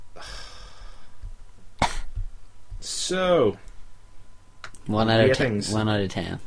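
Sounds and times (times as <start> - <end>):
person coughing: 1.8 - 2.1
speech: 2.8 - 3.7, 4.8 - 6.4.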